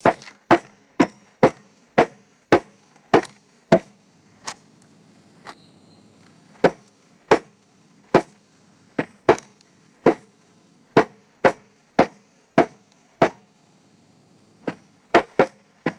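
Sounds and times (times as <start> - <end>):
heavy wooden poles pounding soft dirt: 0.0 - 3.9, 6.6 - 8.4, 9.0 - 10.3, 11.0 - 13.4, 14.6 - 15.9.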